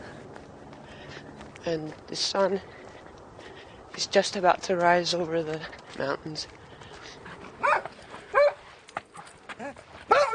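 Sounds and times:
faint outdoor noise: 0.0s - 10.3s
speech: 1.6s - 2.8s, 4.0s - 6.6s
dog barking excitedly in high-pitched yips: 7.6s - 8.6s, 10.1s - 10.3s.

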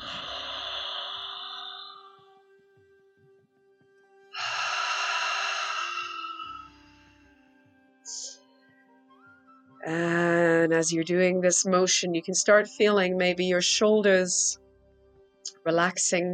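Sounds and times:
long deep ocean breathing through an open mouth: 0.0s - 2.4s, 4.4s - 6.9s
speech: 9.9s - 14.6s, 15.6s - 16.3s.

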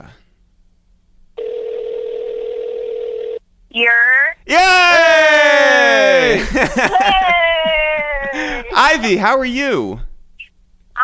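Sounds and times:
faint hum: 0.0s - 11.0s
telephone dial tone while calling: 1.4s - 3.4s
speech: 3.8s - 5.0s, 8.9s - 10.1s
laughter: 5.6s - 9.2s.

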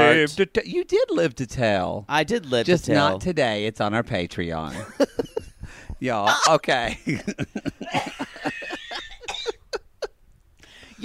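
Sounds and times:
speech: 0.2s - 5.3s, 6.0s - 8.3s
laughter: 4.7s - 10.1s
short harsh coughs and hacking: 7.8s - 9.7s.

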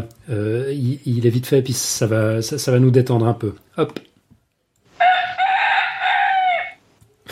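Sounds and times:
speech: 0.0s - 4.1s
rooster crowing cock-a-doodle-doo: 5.0s - 6.8s.

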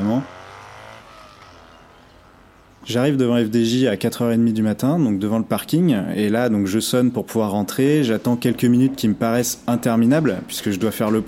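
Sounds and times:
motorcycle engine droning through empty streets: 0.0s - 3.0s
speech: 0.1s - 0.4s, 2.9s - 11.2s.

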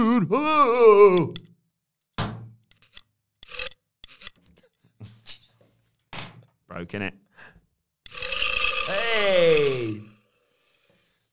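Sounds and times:
speech: 0.1s - 1.5s, 6.8s - 7.2s
long buzzy tonal burp: 8.1s - 10.3s.

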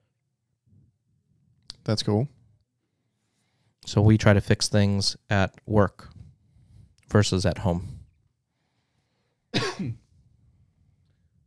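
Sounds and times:
speech: 1.8s - 2.4s, 3.8s - 6.2s, 7.1s - 8.0s, 9.8s - 10.0s
raspy cough: 9.5s - 10.1s.

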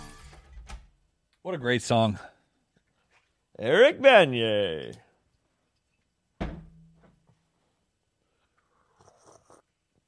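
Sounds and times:
speech: 1.5s - 2.3s, 3.6s - 5.0s
loud thunk: 6.4s - 7.1s
person slurping a drink: 8.6s - 9.7s.

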